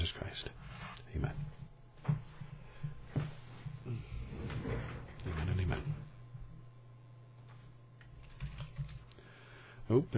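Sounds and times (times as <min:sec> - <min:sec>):
steady low electrical hum: 0:00.0 - 0:10.1
speech: 0:01.2 - 0:01.4, 0:10.0 - 0:10.1
typing on a computer keyboard: 0:08.0 - 0:09.2.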